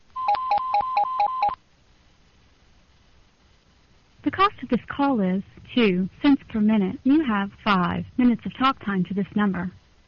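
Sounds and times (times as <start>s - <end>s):
busy telephone line tone: 0.2s - 1.6s
speech: 4.4s - 9.8s.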